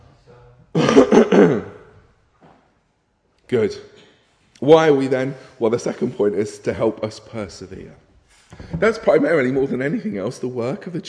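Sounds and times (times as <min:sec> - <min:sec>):
person clearing throat with harsh cough-like burst: 0:00.7 - 0:02.0
speech: 0:01.2 - 0:01.7, 0:03.5 - 0:04.0, 0:04.6 - 0:11.0.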